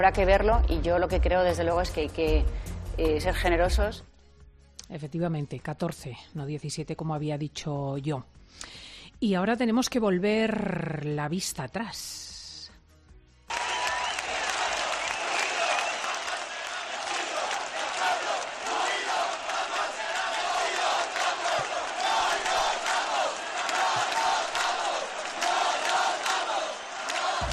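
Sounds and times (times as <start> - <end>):
speech: 0.0 - 4.1, 4.9 - 12.3
large crowd chanting a Spanish-language slogan at a mass street protest: 14.3 - 27.5.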